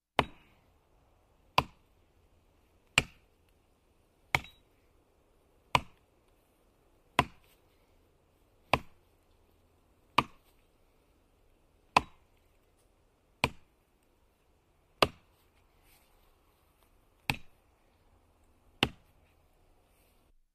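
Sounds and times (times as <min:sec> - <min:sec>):
axe chopping wood: 0:00.2 - 0:00.5, 0:01.5 - 0:01.9, 0:02.8 - 0:03.3, 0:04.3 - 0:04.6, 0:05.7 - 0:06.0, 0:07.1 - 0:07.6, 0:08.6 - 0:09.0, 0:10.1 - 0:10.6, 0:11.9 - 0:12.4, 0:13.4 - 0:13.7, 0:15.0 - 0:15.4, 0:17.2 - 0:17.6, 0:18.8 - 0:19.1.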